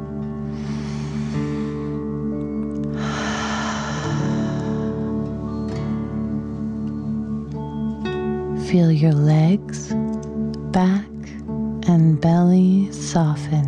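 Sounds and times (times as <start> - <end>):
sustained musical drone: 0.0 - 12.7
deep breath in and out during a relaxation exercise: 0.4 - 2.3, 2.9 - 5.9
speech: 8.7 - 10.0, 10.8 - 11.1, 12.0 - 13.6.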